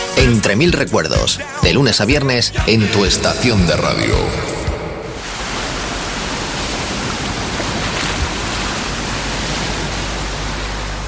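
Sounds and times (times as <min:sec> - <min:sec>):
speech: 0:00.2 - 0:04.6
sea waves washing on a beach: 0:05.0 - 0:11.0.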